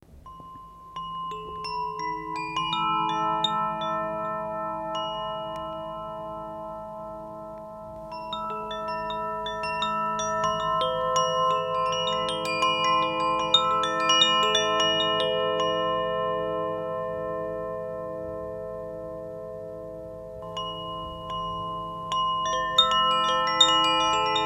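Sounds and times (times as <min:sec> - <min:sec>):
Koshi chime tones: 0:00.2 - 0:19.1, 0:20.1 - 0:24.4.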